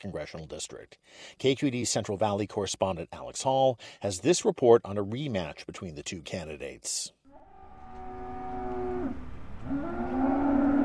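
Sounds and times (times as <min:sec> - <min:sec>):
speech: 0:00.0 - 0:07.2
cattle mooing at a livestock auction: 0:07.3 - 0:10.8.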